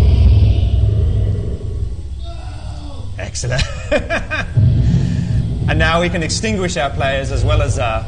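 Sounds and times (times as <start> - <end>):
deep rolling thunder: 0.0 - 2.2, 4.2 - 8.0
laughter: 3.4 - 4.6
speech: 3.4 - 4.6, 5.7 - 8.0.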